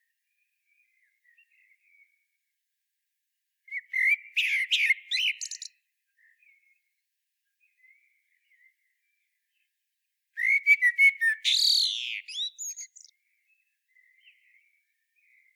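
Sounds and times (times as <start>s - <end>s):
common blackbird Turdus merula singing: 3.7s - 5.8s, 10.4s - 15.5s.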